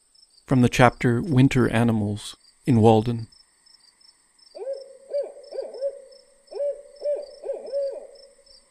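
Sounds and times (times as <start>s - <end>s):
speech: 0.5s - 3.4s
owl hooting: 4.5s - 8.6s.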